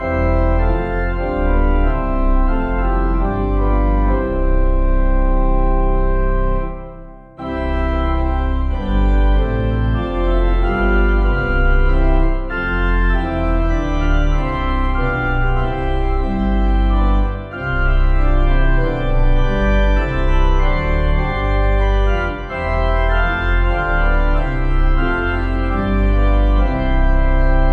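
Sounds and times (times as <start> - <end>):
pipe organ playing a hymn: 0.0 - 27.7.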